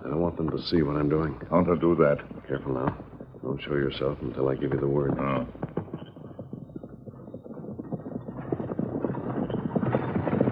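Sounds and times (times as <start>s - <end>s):
hooves of powerful riding horses clip-clopping: 0.0s - 10.5s
speech: 0.3s - 5.7s.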